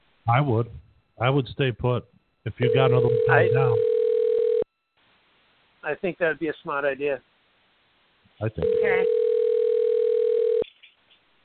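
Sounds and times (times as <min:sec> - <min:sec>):
speech: 0:00.3 - 0:03.9, 0:05.8 - 0:07.3, 0:08.4 - 0:09.2
ringback tone on an outgoing phone call through the telephone line: 0:02.6 - 0:04.7, 0:08.6 - 0:10.6.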